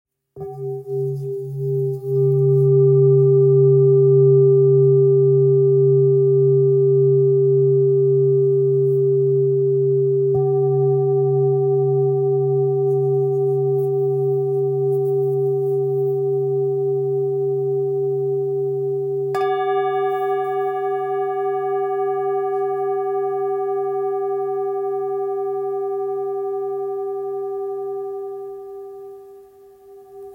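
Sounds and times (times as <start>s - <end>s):
singing bowl: 0.4s - 30.3s.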